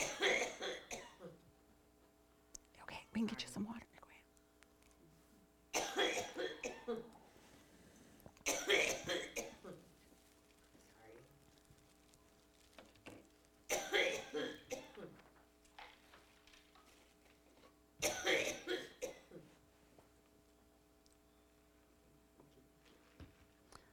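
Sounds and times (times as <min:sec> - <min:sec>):
tickly coughing fit: 0:00.0 - 0:01.4, 0:05.7 - 0:07.2, 0:08.4 - 0:09.9, 0:13.7 - 0:15.3, 0:18.0 - 0:19.6
speech: 0:03.2 - 0:03.9.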